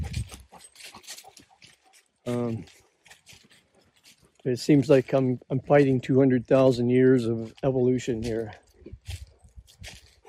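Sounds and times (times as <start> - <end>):
heavy breathing after running: 0.0 - 2.8
speech: 2.3 - 2.8, 4.4 - 9.0.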